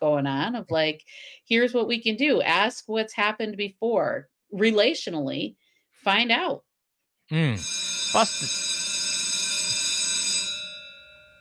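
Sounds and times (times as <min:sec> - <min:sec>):
speech: 0:00.2 - 0:06.7, 0:07.3 - 0:08.7
bright metallic bell ringing: 0:09.5 - 0:11.3.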